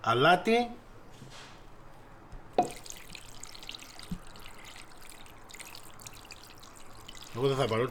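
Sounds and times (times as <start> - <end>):
speech: 0.0 - 1.5, 2.6 - 2.9, 7.4 - 7.8
water pouring into a pot over chicken pieces: 2.6 - 7.8.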